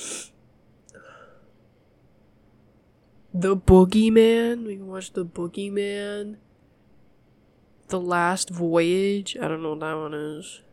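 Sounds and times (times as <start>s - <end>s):
person sneezing: 0.0s - 0.3s
quiet breathing: 0.0s - 1.8s
faint room noise: 0.0s - 10.7s
speech: 3.4s - 6.5s, 7.9s - 10.7s.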